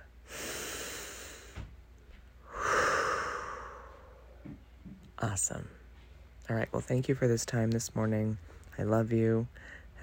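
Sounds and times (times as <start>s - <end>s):
slow deep breathing: 0.2s - 1.7s, 2.4s - 4.6s, 9.6s - 10.0s
speech: 5.2s - 5.8s, 6.5s - 10.0s.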